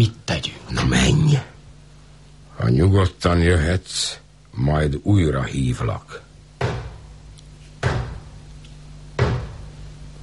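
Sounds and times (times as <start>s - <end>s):
speech: 0.0s - 1.5s, 2.6s - 6.2s
low steady hum: 0.0s - 10.2s
heavy door banging: 7.8s - 8.4s, 9.2s - 9.7s.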